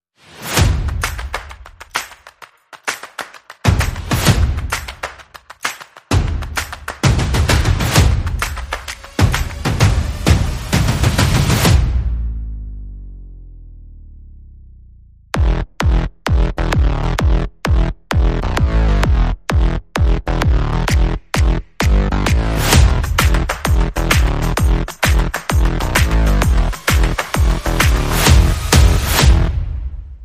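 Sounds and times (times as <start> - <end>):
percussion: 0.2 - 12.8, 15.3 - 30.2
bass: 9.2 - 30.2.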